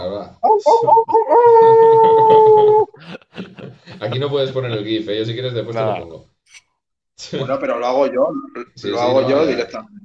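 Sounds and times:
speech: 0.3s - 2.0s, 4.0s - 6.6s, 7.2s - 10.0s
wolf howling: 0.4s - 3.0s
laughter: 1.1s - 5.2s.

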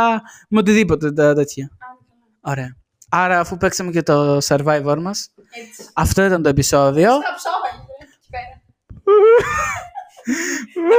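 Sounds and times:
speech: 0.0s - 8.5s, 9.1s - 10.9s
loud wailing sobs with gasping breaths: 9.0s - 10.9s
laughter: 9.1s - 10.9s.

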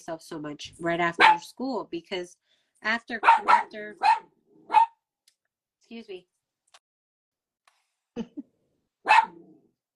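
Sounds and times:
speech: 0.0s - 4.3s, 5.9s - 6.3s, 8.2s - 8.5s
female dog barking: 1.2s - 1.5s, 3.2s - 5.0s, 9.0s - 9.6s.

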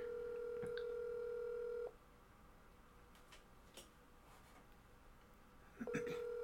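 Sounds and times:
electronic ringback tone on an outgoing phone call: 0.0s - 1.9s, 5.9s - 6.4s
faint room noise: 0.0s - 6.4s.

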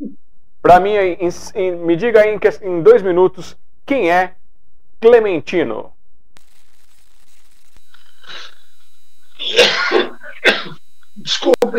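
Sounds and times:
speech: 0.6s - 4.4s, 5.0s - 5.9s, 9.4s - 11.7s
person clearing throat with a rough raspy hack: 9.4s - 10.8s.

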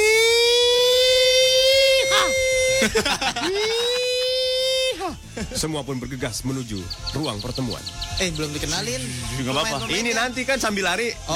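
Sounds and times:
voice imitating a headquarters crime alarm siren: 0.0s - 2.7s
laughter: 2.6s - 5.8s
speech: 2.8s - 3.8s, 5.4s - 11.3s.

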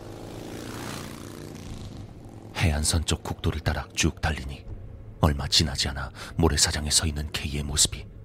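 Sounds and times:
motorcycle engine revving and driving off: 0.0s - 5.2s
speech: 2.6s - 8.2s.

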